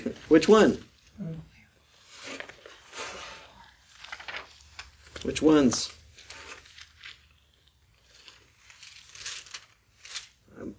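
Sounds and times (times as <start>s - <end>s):
speech: 0.3s - 0.9s, 5.2s - 6.0s
Bible pages turning and rustling: 2.0s - 10.4s.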